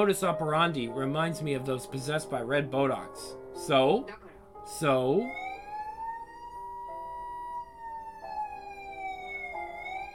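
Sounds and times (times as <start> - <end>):
speech: 0.0 - 5.4
emergency vehicle sirens wailing as they approach a school: 5.0 - 10.1.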